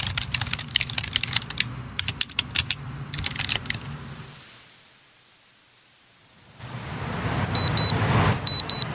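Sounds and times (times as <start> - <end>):
typing on a laptop keyboard: 0.0 - 3.8
steady hiss: 0.0 - 7.5
short high-pitched beeps: 7.6 - 8.9.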